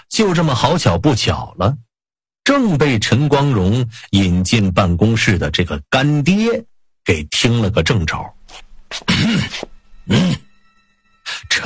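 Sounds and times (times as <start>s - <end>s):
speech: 0.1s - 1.8s, 2.4s - 10.4s, 11.3s - 11.6s
loud heavy throaty coughs: 8.9s - 10.5s.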